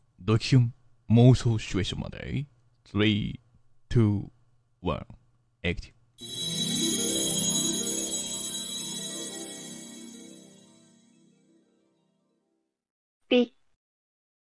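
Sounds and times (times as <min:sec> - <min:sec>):
speech: 0:00.3 - 0:06.5, 0:13.3 - 0:13.6
melodic phone ringtone chiming: 0:06.2 - 0:11.8.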